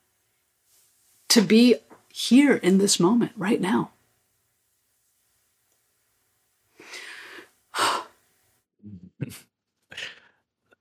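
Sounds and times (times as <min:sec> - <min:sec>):
speech: 0:01.4 - 0:04.0
group of people taking a quick breath together: 0:06.8 - 0:08.2.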